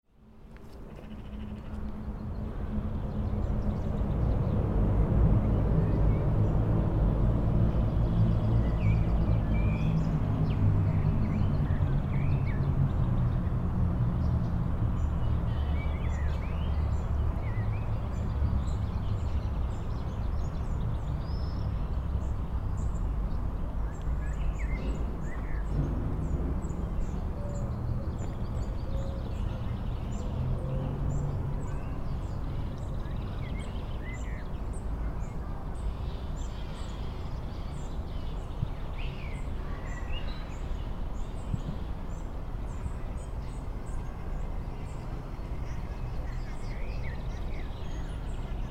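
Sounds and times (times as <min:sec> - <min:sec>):
city park ambience in Košice: 0:00.1 - 0:48.6.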